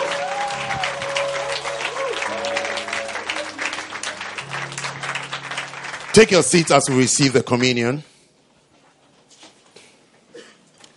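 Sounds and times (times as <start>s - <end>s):
congregation applauding in a large room: 0.0s - 8.0s
speech: 6.2s - 8.1s.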